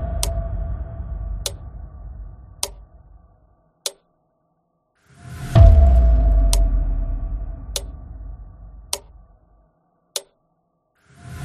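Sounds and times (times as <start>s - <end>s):
ghostly metronome ticking: 0.2s - 0.4s, 1.4s - 1.6s, 2.6s - 2.8s, 5.7s - 6.8s, 7.3s - 8.0s, 8.9s - 9.1s.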